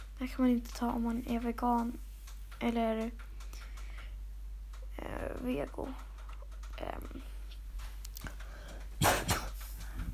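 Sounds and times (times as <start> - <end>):
low room noise: 0.0 - 10.1
speech: 0.2 - 3.3, 5.4 - 6.1, 6.8 - 7.4
quiet breathing: 3.2 - 4.4, 8.2 - 10.1
dry coughs: 9.0 - 9.7.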